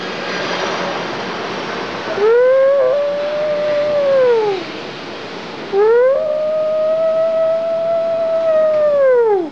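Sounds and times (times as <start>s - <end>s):
rushing hiss: 0.0s - 9.5s
wolves howling: 2.1s - 4.7s, 5.7s - 9.5s.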